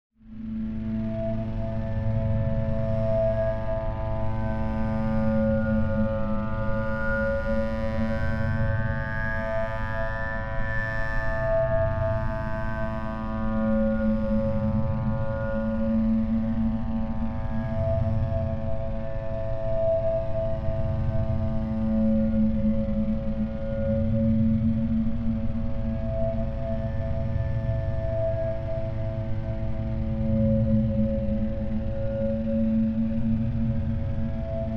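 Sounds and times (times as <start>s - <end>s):
pulsing feedback drone swell: 0.4s - 34.7s.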